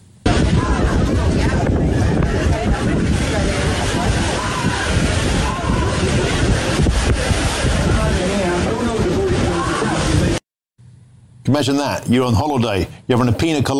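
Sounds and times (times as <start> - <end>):
strong wind buffeting microphone on a beach: 0.2 - 10.4
indistinct voices: 0.3 - 10.4
steady crashing surf at a beach in southern Spain: 0.3 - 10.4
speech: 11.5 - 13.7.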